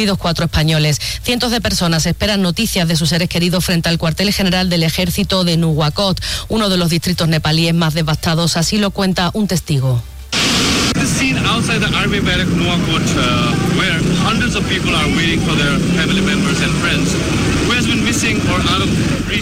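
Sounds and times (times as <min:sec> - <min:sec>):
speech: 0:00.0 - 0:10.1, 0:11.4 - 0:19.4
helicopter rotor roaring overhead: 0:10.3 - 0:19.4
people chattering in front of army headquarters: 0:11.0 - 0:19.4.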